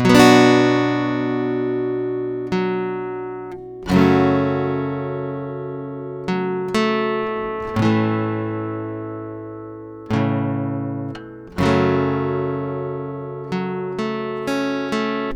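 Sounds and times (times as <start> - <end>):
acoustic guitar playing in F sharp minor: 0.0 - 15.3.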